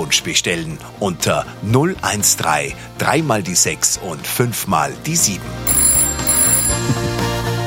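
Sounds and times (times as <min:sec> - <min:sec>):
speech: 0:00.0 - 0:05.9
radio studio landline telephone ringing: 0:05.7 - 0:07.5.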